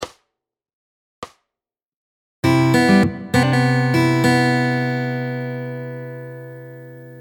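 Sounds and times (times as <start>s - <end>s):
fingerpicked guitar lick variation: 2.4s - 7.2s.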